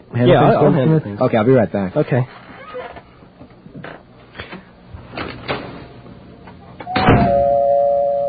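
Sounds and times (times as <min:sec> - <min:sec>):
speech: 0:00.2 - 0:02.4
doorbell ringing: 0:06.9 - 0:08.2.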